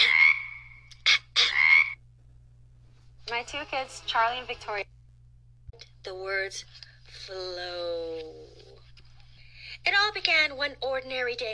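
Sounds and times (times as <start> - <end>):
frog croaking: 0.0 - 2.0
speech: 3.4 - 5.0, 5.8 - 8.8, 9.8 - 11.5.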